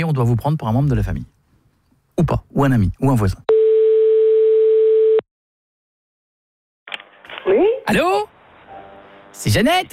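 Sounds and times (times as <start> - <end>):
speech: 0.0 - 1.4, 2.2 - 3.5, 7.4 - 8.3, 9.4 - 9.9
telephone line tone while placing a call: 3.5 - 5.2.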